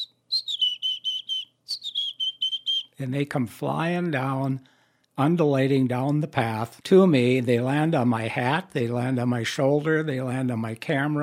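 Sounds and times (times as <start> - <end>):
person whistling an imitation of the chickadee song: 0.0 - 3.0
speech: 3.0 - 11.2.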